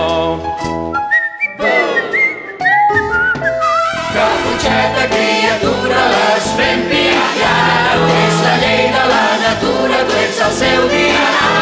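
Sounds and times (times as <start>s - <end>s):
full instrumental accompaniment: 0.0s - 11.6s
person whistling a tune: 0.7s - 4.1s.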